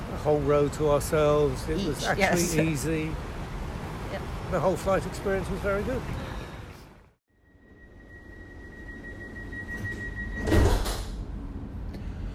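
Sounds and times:
speech: 0.2 - 3.3, 4.2 - 6.2
rumble and rolling noise of a tram: 7.9 - 12.3
clatter of a tram gathering speed: 8.7 - 12.3.

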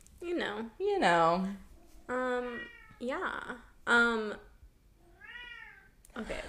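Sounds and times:
speech: 0.2 - 4.5, 6.2 - 6.4
cat meowing loudly and insistently: 5.2 - 5.9.

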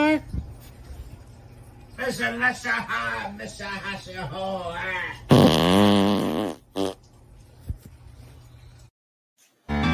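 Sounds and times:
speech: 2.0 - 7.1
loud drawn-out fart: 5.3 - 7.0.

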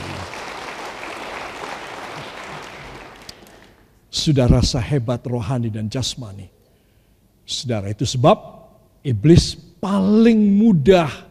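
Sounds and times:
audience applauding: 0.0 - 3.9
speech: 4.2 - 6.6, 7.5 - 11.2.

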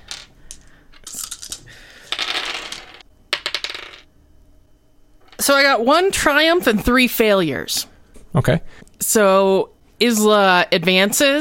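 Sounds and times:
dice for a tabletop game rattling across a hard tabletop: 0.0 - 4.1
speech: 5.4 - 11.3.

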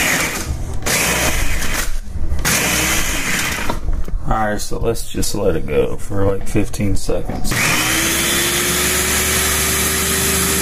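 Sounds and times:
blender crushing ice into snow: 0.0 - 3.7, 7.5 - 10.6
speech: 4.5 - 7.9.

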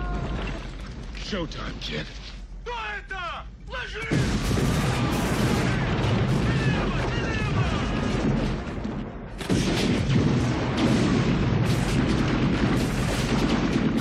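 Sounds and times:
speech: 1.3 - 2.2, 3.0 - 5.2
movie-style explosions: 4.1 - 13.9
movie-style gunfire: 4.1 - 13.9.

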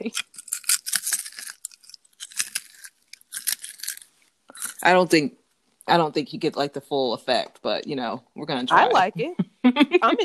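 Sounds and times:
speech: 0.0 - 0.4, 4.8 - 10.2
crisp crunching of popcorn being chewed: 0.0 - 5.0
brief voiced sound: 4.6 - 5.3, 5.9 - 10.2.

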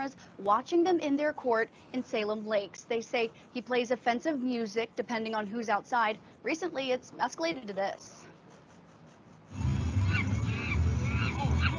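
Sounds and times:
speech: 0.0 - 8.2
loud steady rumbling background: 9.5 - 11.7
monkey hooting calls: 10.0 - 11.7.

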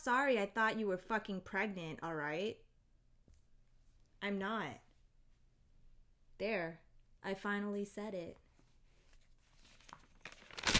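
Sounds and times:
speech: 0.0 - 2.6, 4.2 - 4.8, 6.4 - 8.4
toilet paper being torn and crinkled: 9.6 - 10.7.

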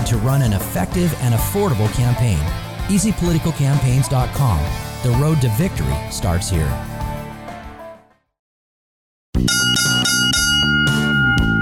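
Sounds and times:
speech: 0.1 - 6.9
loud bright radio jingle of bell chimes: 9.5 - 11.5
ringing tone: 9.5 - 11.5.

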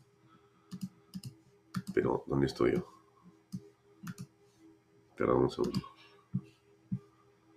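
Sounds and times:
computer mouse clicking: 0.7 - 2.0, 3.5 - 4.3, 5.6 - 5.9
keyboard clicking: 0.7 - 2.0, 4.1 - 4.3
speech: 2.0 - 3.0, 5.2 - 5.9.

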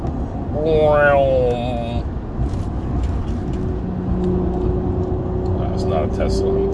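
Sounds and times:
steady road rumble and traffic noise: 0.0 - 6.7
speech: 0.6 - 2.0, 6.0 - 6.7
fast car roaring past on a sunny day: 3.2 - 6.7.

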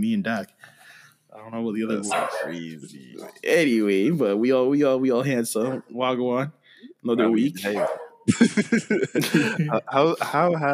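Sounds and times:
speech: 0.0 - 10.7
dog barking in short sharp yaps: 2.0 - 2.6, 7.8 - 8.2
laughter: 7.4 - 10.7.

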